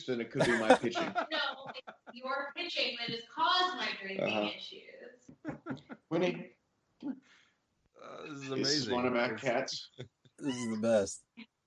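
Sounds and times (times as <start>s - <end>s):
laughter: 0.0s - 2.5s, 3.6s - 4.5s, 5.5s - 6.4s, 8.2s - 11.1s
speech: 0.0s - 4.9s, 5.7s - 6.5s, 8.3s - 11.3s
cat chirps and breathy noises: 10.4s - 11.0s.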